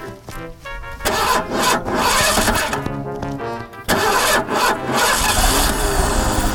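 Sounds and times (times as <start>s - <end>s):
car engine cranking, sputtering and starting: 1.1s - 2.8s, 3.9s - 6.5s.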